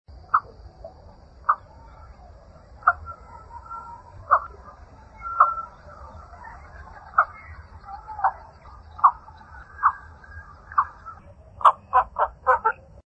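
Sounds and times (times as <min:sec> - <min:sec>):
Indian pond heron: 0:00.2 - 0:13.0.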